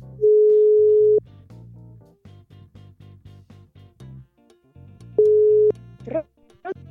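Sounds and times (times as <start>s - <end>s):
telephone call tone while phoning a guest: 0.2s - 1.2s, 5.2s - 5.7s.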